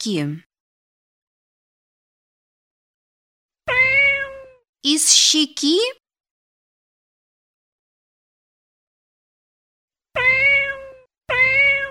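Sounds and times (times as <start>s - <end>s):
speech: 0.0s - 0.5s, 4.8s - 6.0s
cat meowing: 3.7s - 4.6s, 10.2s - 11.8s.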